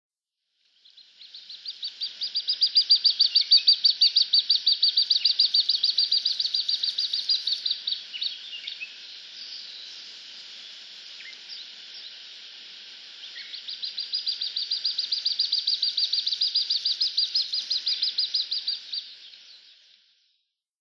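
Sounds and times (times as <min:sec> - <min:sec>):
little grebe in Tochigi: 0:01.6 - 0:08.8, 0:13.3 - 0:19.1.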